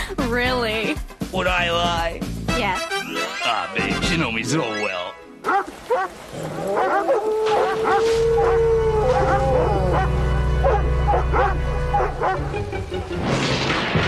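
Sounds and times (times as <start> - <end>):
speech: 0.2 - 2.3, 3.6 - 14.0
several dogs barking, yelping and howling: 5.4 - 12.6.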